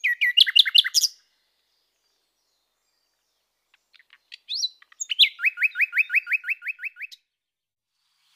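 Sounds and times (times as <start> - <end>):
common nightingale song: 0.0 - 8.3.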